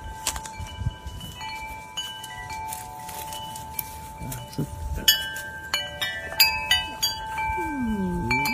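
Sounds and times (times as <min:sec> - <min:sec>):
wind chimes tinkling: 0:00.0 - 0:08.5
golden retriever howling: 0:07.5 - 0:08.5.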